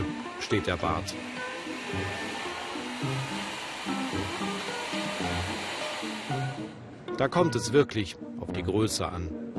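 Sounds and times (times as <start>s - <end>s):
hair dryer blow-drying a mustache: 0.0s - 6.8s
speech: 0.5s - 2.3s, 3.0s - 3.4s, 7.2s - 9.4s.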